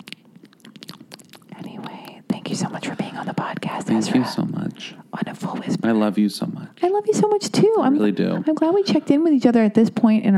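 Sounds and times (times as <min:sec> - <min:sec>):
person chewing crunchy food at the microphone: 0:00.0 - 0:02.3
speech: 0:02.5 - 0:10.3.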